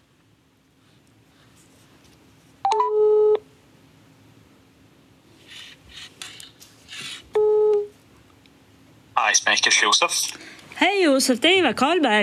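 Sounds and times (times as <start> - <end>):
telephone dialing beeps: 2.7 - 3.0
telephone ringing tone: 2.7 - 3.4
speech: 9.4 - 12.2.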